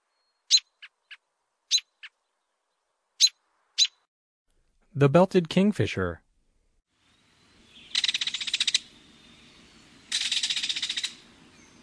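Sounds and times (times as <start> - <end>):
American robin singing: 0.0 - 4.1, 7.1 - 11.8
speech: 5.0 - 6.2.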